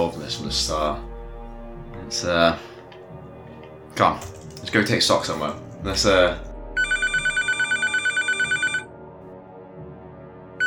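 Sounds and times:
speech: 0.1s - 1.1s, 2.1s - 2.7s, 4.0s - 6.5s
satellite phone ringing with a rapid electronic pulsed trill: 6.8s - 8.9s.

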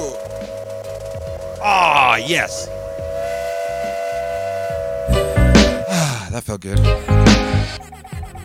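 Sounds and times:
speech: 1.6s - 2.8s, 6.4s - 7.9s
steam train whistle: 2.4s - 6.0s.

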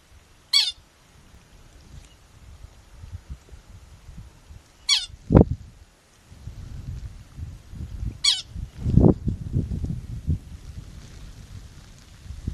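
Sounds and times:
gusty wind rumbling outdoors: 0.0s - 12.5s
pika chirping on the tundra: 0.5s - 0.8s, 4.8s - 5.2s.

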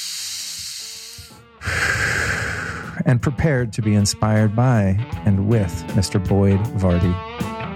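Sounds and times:
deep breath: 0.0s - 3.0s
speech: 3.0s - 7.3s.

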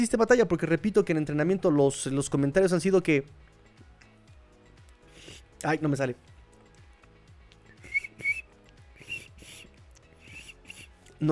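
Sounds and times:
speech: 0.0s - 3.5s, 5.6s - 6.3s
voice imitating a cricket with breathy whistled chirps: 7.8s - 10.9s.

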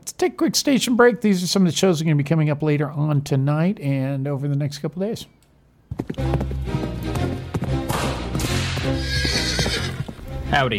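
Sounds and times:
speech: 0.1s - 7.0s, 10.5s - 10.7s
horse hooves clip-clopping: 5.9s - 10.7s
horse whinnying: 8.8s - 10.2s.

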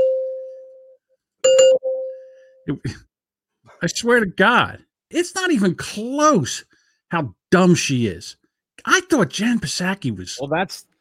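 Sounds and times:
bell dinging: 0.0s - 2.4s
speech: 2.7s - 3.1s, 3.8s - 10.9s.

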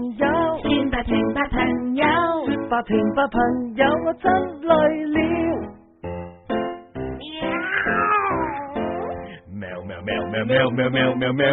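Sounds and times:
speech: 0.0s - 0.4s, 1.0s - 2.1s, 2.7s - 5.8s, 10.3s - 11.5s
person imitating cat meows in a Chinese-language song: 7.2s - 8.9s.

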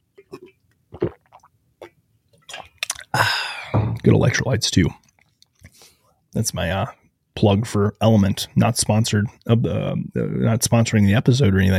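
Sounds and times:
person sipping and swallowing water: 0.1s - 4.1s
speech: 4.0s - 5.0s, 6.4s - 11.7s.

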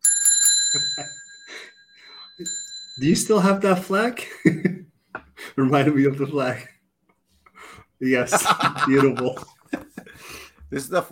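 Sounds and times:
small bell ringing: 0.0s - 4.1s
speech: 0.7s - 1.7s, 2.4s - 4.8s, 5.6s - 6.7s, 8.0s - 9.6s, 10.7s - 11.1s
laughter: 8.2s - 10.2s.

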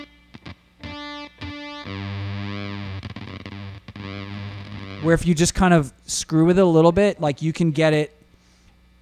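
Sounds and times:
heavily distorted guitar effects unit jumping between octaves: 0.0s - 5.8s
speech: 5.0s - 8.2s.

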